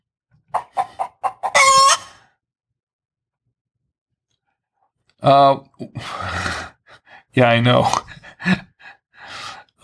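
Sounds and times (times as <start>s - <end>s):
hen clucking: 0.5s - 2.2s
hen squawking: 0.5s - 2.2s
speech: 5.2s - 6.5s, 7.4s - 8.7s.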